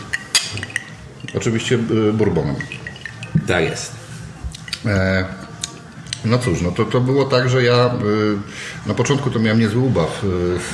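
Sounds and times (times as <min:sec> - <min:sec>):
glasses of bourbon clinking together in a toast at breakfast: 0:00.0 - 0:04.9
speech: 0:01.4 - 0:02.8, 0:03.4 - 0:04.0, 0:04.8 - 0:05.4, 0:06.2 - 0:10.7.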